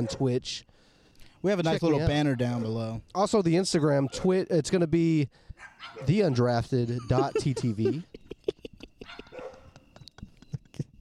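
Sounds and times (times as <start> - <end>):
dogs yipping: 0.0 - 0.3, 1.7 - 2.9, 5.6 - 6.6, 8.2 - 10.6
dogs barking: 0.0 - 0.4, 1.7 - 2.9, 4.0 - 4.4, 5.6 - 7.4, 9.0 - 9.8
speech: 0.0 - 0.7, 1.4 - 8.2
laughter: 6.8 - 10.9.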